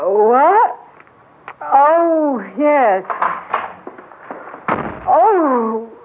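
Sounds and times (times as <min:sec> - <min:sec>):
speech: 0:01.7 - 0:03.2
soft knocks and thuds: 0:03.1 - 0:05.2
door slamming shut: 0:03.1 - 0:05.4
heavy impact: 0:03.2 - 0:05.5.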